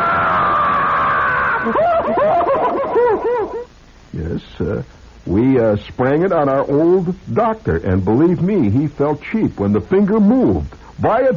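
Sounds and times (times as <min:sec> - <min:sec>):
woman screaming and shrieking: 0:00.0 - 0:02.5
laughter: 0:01.5 - 0:03.7
speech: 0:03.4 - 0:11.3.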